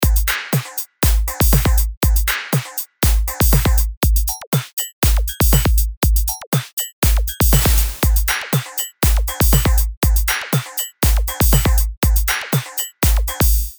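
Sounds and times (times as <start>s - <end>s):
dance music: 0.0s - 13.7s.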